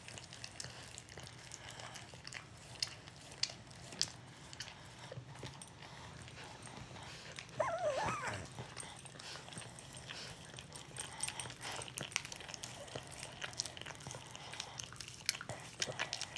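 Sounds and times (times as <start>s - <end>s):
dogs licking and grooming each other: 0.0s - 16.3s
dog whining: 7.6s - 8.8s.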